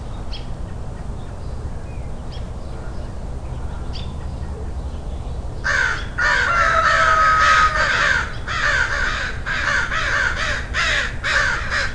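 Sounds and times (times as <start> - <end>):
crow giving hoarse grating caws: 5.6 - 11.9.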